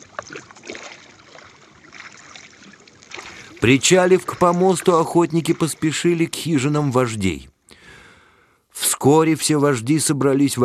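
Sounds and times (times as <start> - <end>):
oars of several rowed boats splashing in water: 0.0 - 7.2
speech: 3.6 - 7.5, 9.0 - 10.6.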